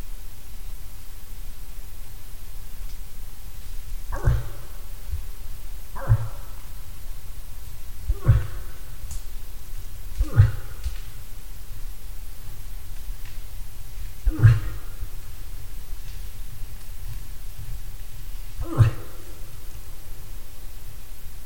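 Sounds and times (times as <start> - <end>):
low steady background hum: 0.0 - 21.4
moose short deep coughing grunts: 3.9 - 11.8, 14.0 - 20.5.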